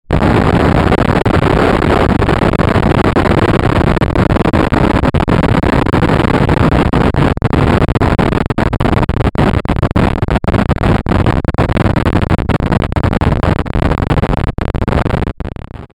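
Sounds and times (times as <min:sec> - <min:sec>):
short harsh distortion breakup: 0:00.0 - 0:15.9.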